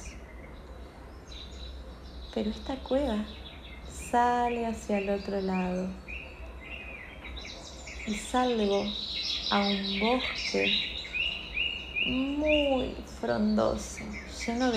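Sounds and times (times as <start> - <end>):
distant small birds chirping: 0.0 - 14.7
speech: 2.3 - 3.4, 4.1 - 6.0, 8.1 - 10.9, 12.1 - 14.7.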